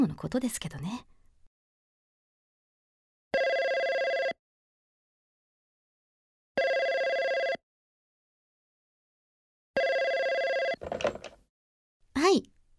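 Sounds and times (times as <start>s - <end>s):
speech: 0.0s - 1.1s, 12.2s - 12.5s
telephone ringing: 3.4s - 4.4s, 6.6s - 7.6s, 9.8s - 11.3s.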